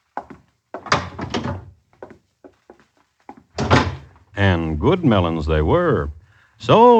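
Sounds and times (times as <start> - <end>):
wooden door opening with latch and hinges: 0.9 - 1.7, 3.6 - 4.2
speech: 4.4 - 6.9.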